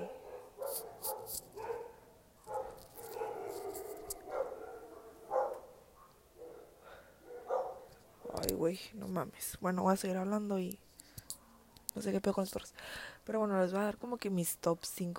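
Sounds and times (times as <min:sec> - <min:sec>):
dogs barking: 0:00.0 - 0:08.4
speech: 0:08.6 - 0:10.8, 0:12.0 - 0:15.1.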